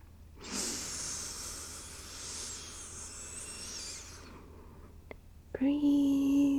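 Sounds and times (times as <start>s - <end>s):
person breathing slowly: 0.4s - 5.0s.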